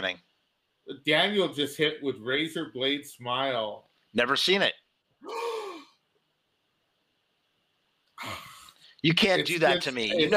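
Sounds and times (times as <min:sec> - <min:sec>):
speech: 0:00.0 - 0:05.5, 0:09.0 - 0:10.3
person gasping: 0:05.2 - 0:05.9
breathing: 0:08.6 - 0:09.0.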